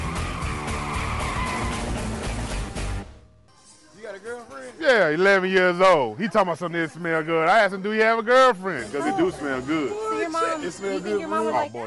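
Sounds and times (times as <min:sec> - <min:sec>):
tires skidding with squealing brakes: 0:00.0 - 0:02.7
speech: 0:04.8 - 0:11.8.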